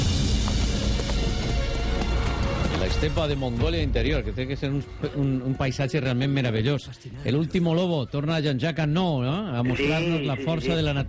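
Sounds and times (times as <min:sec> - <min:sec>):
horses galloping across the steppe of Inner Mongolia: 0:00.0 - 0:03.6
speech: 0:03.0 - 0:11.0.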